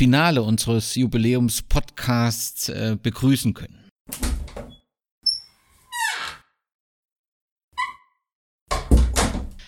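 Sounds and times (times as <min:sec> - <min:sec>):
speech: 0:00.0 - 0:04.3
door creaking open: 0:04.1 - 0:06.6, 0:07.8 - 0:08.2.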